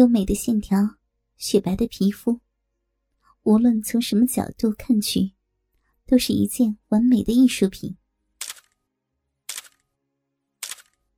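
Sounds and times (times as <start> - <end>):
speech: 0.0 - 2.4, 3.4 - 5.4, 6.1 - 8.0
camera shutter clicks as photos are taken: 8.4 - 8.8, 9.5 - 9.8, 10.6 - 11.0.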